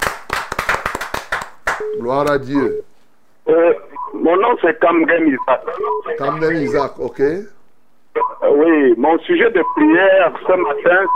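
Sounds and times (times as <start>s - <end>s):
crowd applauding: 0.0s - 1.8s
speech: 1.8s - 7.6s, 8.4s - 11.1s.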